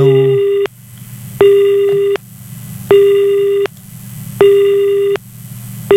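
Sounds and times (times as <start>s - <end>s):
telephone busy tone after a call is disconnected: 0.0s - 0.7s, 1.4s - 2.2s, 2.9s - 3.7s, 4.4s - 5.2s
low hum: 0.0s - 5.9s.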